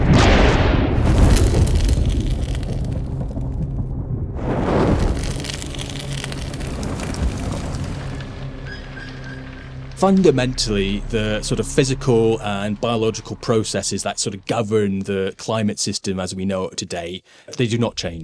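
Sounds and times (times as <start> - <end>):
deep rolling thunder from a violent lightning storm: 0.0 - 8.6
speech: 10.0 - 18.2.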